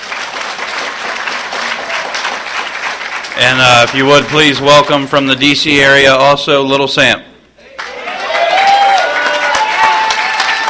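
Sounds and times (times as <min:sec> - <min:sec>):
audience applause for a speaker: 0:00.0 - 0:04.7, 0:07.8 - 0:10.6
speech: 0:03.4 - 0:07.3.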